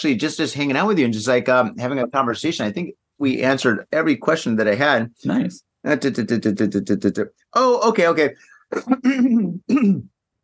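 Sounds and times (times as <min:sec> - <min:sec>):
speech: 0:00.0 - 0:10.1
person clearing throat with a gruff rasping cough: 0:08.7 - 0:10.2.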